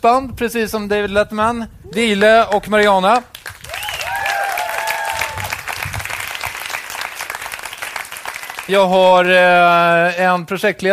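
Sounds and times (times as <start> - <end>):
speech: 0.0 - 3.6, 8.7 - 10.9
studio audience applause: 3.3 - 9.8
whoops and whistles from studio audience: 3.7 - 5.6.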